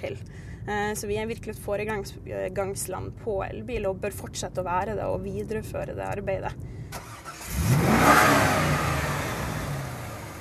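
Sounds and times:
speech: 0.0 - 7.1
Corvette sports car engine revving: 7.0 - 10.3.

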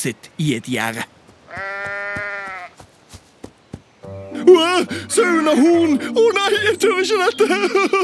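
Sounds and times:
speech: 0.0 - 1.7, 4.4 - 8.0
sheep bleating: 1.5 - 2.8
laughter: 4.4 - 8.0.

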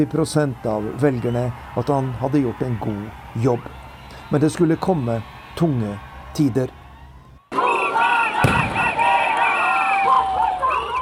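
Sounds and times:
speech: 0.0 - 6.8
outdoor crowd cheering and shouting at a street celebration: 0.0 - 11.0
sharp firework bang at a street celebration: 8.4 - 9.5.

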